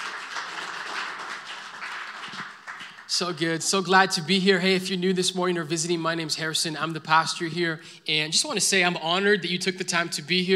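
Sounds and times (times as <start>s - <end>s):
large gathering applauding: 0.0s - 3.2s
speech: 3.1s - 10.5s.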